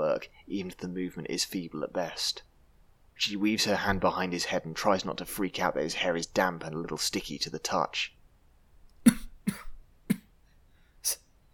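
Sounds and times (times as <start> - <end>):
speech: 0.2 - 2.5, 3.2 - 8.2, 11.0 - 11.2
harsh strained pained coughs: 9.1 - 10.3.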